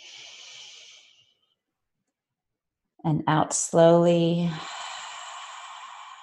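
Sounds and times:
slow inhalation through the nose during a mindfulness and yoga breathing exercise: 0.0 - 1.4, 4.6 - 6.2
speech: 3.0 - 4.7.

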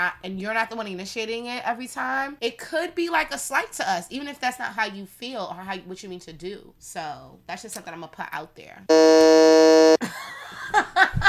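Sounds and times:
speech: 0.0 - 10.9
loud harsh electronic buzzer: 8.9 - 10.0.

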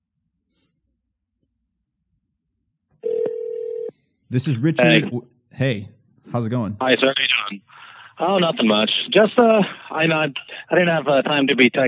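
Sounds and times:
telephone line tone as a call connects: 3.0 - 3.9
speech: 4.3 - 11.8.

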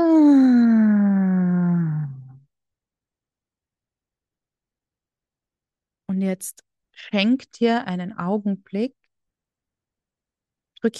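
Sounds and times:
person exhaling with a voiced ah tone during a breathing exercise: 0.0 - 2.4
speech: 6.3 - 9.0, 10.8 - 10.9.

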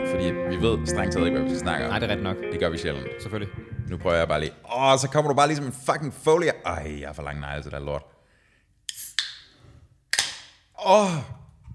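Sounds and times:
speech: 0.1 - 8.1, 10.8 - 11.4
drink bottle being opened with cracking and hissing: 8.9 - 9.5.

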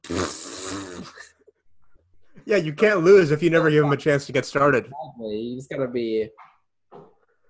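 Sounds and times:
mouth imitation fart noise blown into the microphone: 0.0 - 1.4
speech: 0.1 - 1.4, 2.4 - 7.1.

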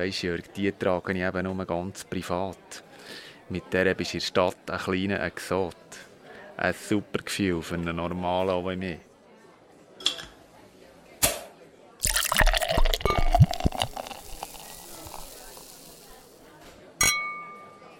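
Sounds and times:
speech: 0.0 - 9.1
glasses clinking in a toast: 12.0 - 16.4, 17.0 - 17.4
liquid sounds: 12.0 - 16.5.

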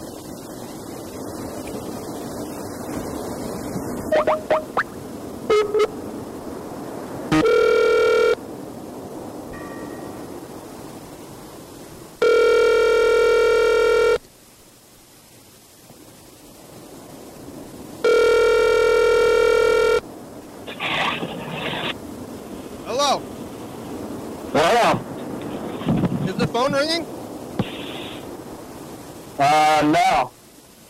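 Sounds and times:
faint hiss: 0.0 - 30.8
phone dialing beeps: 5.5 - 5.9, 7.3 - 8.4, 12.2 - 14.2, 18.1 - 20.0
phone line ringback tone on outgoing call: 5.5 - 6.0, 7.3 - 8.4, 12.2 - 14.2, 18.0 - 20.0.

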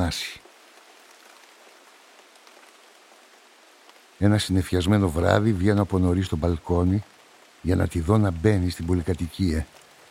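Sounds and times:
steady rain pattering on a surface: 0.0 - 10.0
speech: 0.1 - 0.4, 4.2 - 9.8.

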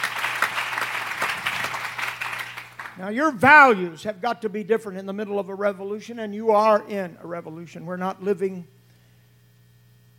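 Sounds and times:
audience clapping hands: 0.0 - 3.2
faint low hum: 0.0 - 10.1
speech: 3.0 - 8.8.

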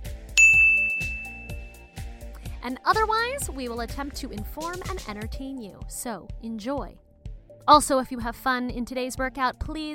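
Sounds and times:
rhythmic thumping music: 0.0 - 9.9
bright bell ding signalling a move change: 0.4 - 1.8
speech: 2.6 - 7.0, 7.7 - 9.9.

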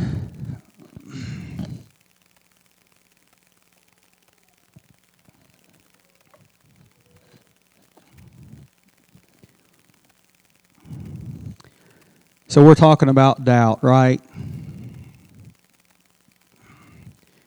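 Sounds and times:
breathy sigh-like exhale: 0.0 - 1.9, 7.0 - 8.7, 10.8 - 12.4, 14.2 - 15.6, 16.5 - 17.4
speech: 12.5 - 14.3.

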